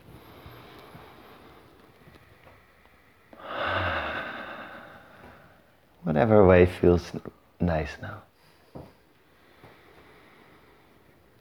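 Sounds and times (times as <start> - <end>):
slow deep breathing: 0.0 - 6.1, 8.4 - 11.3
speech: 6.0 - 8.3.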